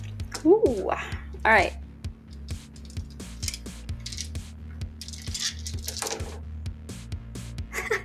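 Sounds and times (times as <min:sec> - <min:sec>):
faint steady hum: 0:00.0 - 0:06.9
speech: 0:00.5 - 0:01.8
handful of plastic dice clattering across a hard surface: 0:05.0 - 0:06.4.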